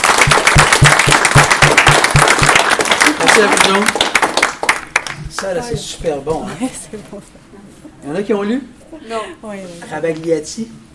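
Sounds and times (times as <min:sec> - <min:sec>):
audience clapping in unison: 0:00.0 - 0:05.8
speech: 0:03.4 - 0:04.0, 0:05.4 - 0:10.9.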